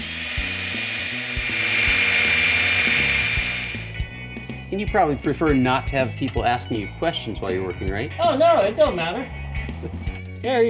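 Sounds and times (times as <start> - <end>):
power drill boring into a metal safe: 0.0 - 4.0
speech: 4.9 - 10.6.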